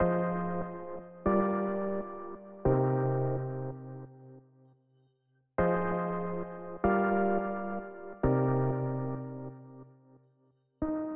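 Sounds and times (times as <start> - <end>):
keyboard melody loop in C minor: 0.0 - 4.1, 5.8 - 9.8.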